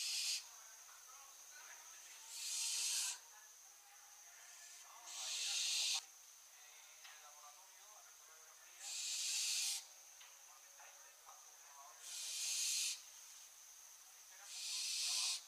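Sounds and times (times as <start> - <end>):
barn owl Tyto alba rasping breathy shrieks: 0.0 - 0.4, 2.3 - 3.2, 4.5 - 6.0, 8.8 - 9.9, 12.0 - 13.0, 14.5 - 15.4.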